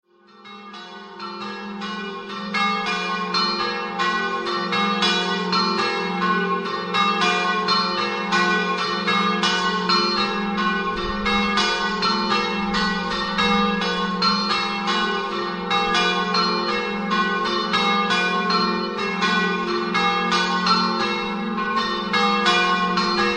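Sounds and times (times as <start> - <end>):
church bells of San Rocco di Forgaria: 0.1 - 23.3.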